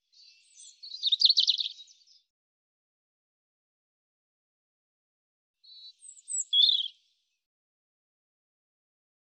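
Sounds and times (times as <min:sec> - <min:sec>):
European robin song: 0:00.0 - 0:02.3, 0:05.6 - 0:07.4.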